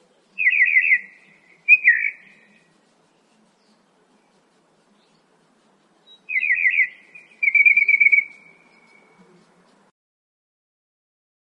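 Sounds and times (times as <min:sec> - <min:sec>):
northern mockingbird song: 0:00.0 - 0:09.8.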